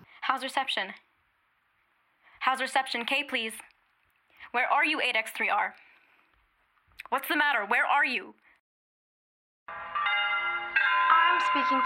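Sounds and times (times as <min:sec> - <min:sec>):
speech: 0:00.3 - 0:01.1, 0:02.4 - 0:03.7, 0:04.5 - 0:05.9, 0:07.0 - 0:08.4, 0:11.3 - 0:11.8
bells ringing as evacuation warning in New York City: 0:09.7 - 0:11.8.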